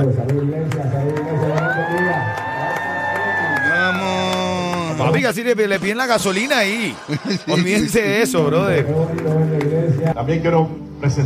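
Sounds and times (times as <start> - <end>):
speech: 0.0 - 1.2, 5.0 - 11.2
large church audience screaming and cheering at a pastor: 0.7 - 9.1
laughter: 3.7 - 9.1.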